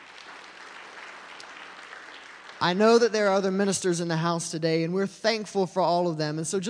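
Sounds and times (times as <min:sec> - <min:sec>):
congregation applauding at a church service: 0:00.0 - 0:03.1
speech: 0:02.6 - 0:06.6.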